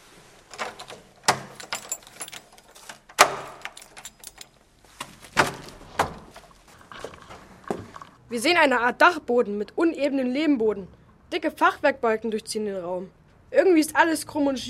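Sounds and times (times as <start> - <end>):
keys jangling and scraping in a lock: 0.5 - 5.8
sharp metallic lock clicks: 0.5 - 6.4
speech: 8.3 - 14.6.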